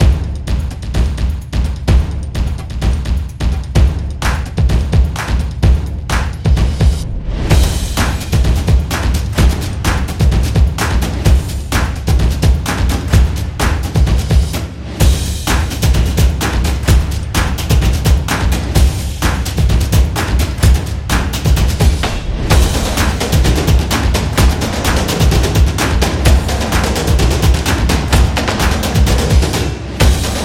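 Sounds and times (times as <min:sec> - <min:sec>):
Sport drums percussion: 0:00.0 - 0:30.4.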